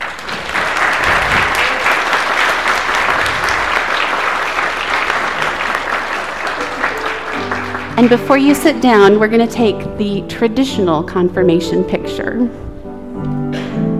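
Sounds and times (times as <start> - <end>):
large indoor crowd applauding: 0.0 - 9.0
speech: 8.0 - 12.6.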